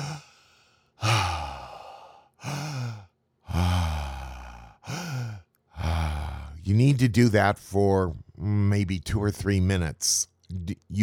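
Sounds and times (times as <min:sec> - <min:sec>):
deep circular breathing exercise with sighing breaths: 0:00.0 - 0:06.6
speech: 0:06.7 - 0:11.0.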